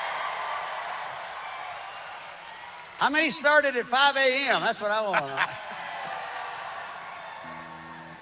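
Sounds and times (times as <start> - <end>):
live crowd roaring and cheering: 0.0 - 8.2
speech: 3.0 - 5.8.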